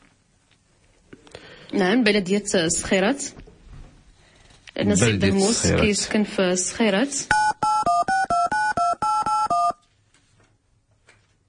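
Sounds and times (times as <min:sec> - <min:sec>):
speech: 0:01.7 - 0:03.4, 0:04.8 - 0:07.5
telephone keypad tones: 0:07.3 - 0:09.8.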